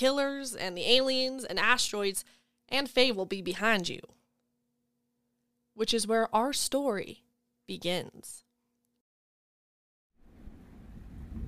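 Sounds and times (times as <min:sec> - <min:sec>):
speech: 0:00.0 - 0:04.2, 0:05.8 - 0:08.4
deep low rumble of thunder: 0:10.3 - 0:11.4
steady rain: 0:10.3 - 0:11.4.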